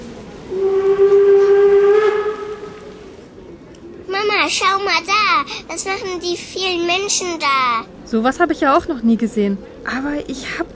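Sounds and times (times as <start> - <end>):
long steady steam train whistle: 0.5 - 3.0
speech: 4.5 - 10.7.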